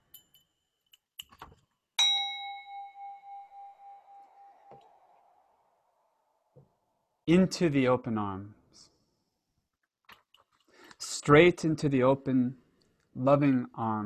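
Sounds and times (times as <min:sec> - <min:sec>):
small bell struck and ringing: 0:00.0 - 0:00.7, 0:02.0 - 0:04.6
faint clicks and handling noises: 0:00.1 - 0:01.8, 0:10.0 - 0:11.0
speech: 0:07.3 - 0:08.9, 0:11.2 - 0:12.6, 0:13.2 - 0:14.0.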